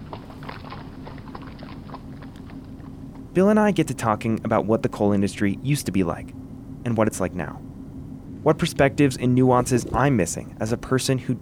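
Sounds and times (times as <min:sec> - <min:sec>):
horse wagon wheels rolling: 0:00.0 - 0:03.4
horse hooves clip-clopping at a walking pace: 0:00.0 - 0:03.9
speech: 0:03.4 - 0:07.7, 0:08.4 - 0:11.4.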